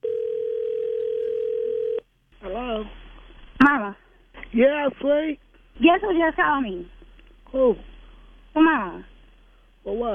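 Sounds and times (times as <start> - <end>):
landline telephone dial tone: 0.0 - 2.0
speech: 3.7 - 7.9, 8.6 - 9.1, 9.8 - 10.1.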